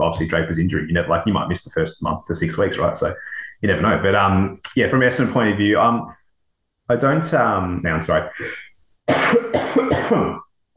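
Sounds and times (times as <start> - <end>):
speech: 0.1 - 6.2, 6.9 - 10.5
harsh throaty coughing: 8.4 - 10.5.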